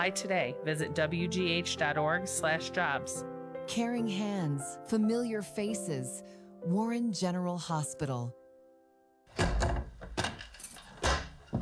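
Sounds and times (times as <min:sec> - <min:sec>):
speech: 0:00.0 - 0:08.4
wooden kitchen cabinet doors and drawers banging shut: 0:09.3 - 0:11.5.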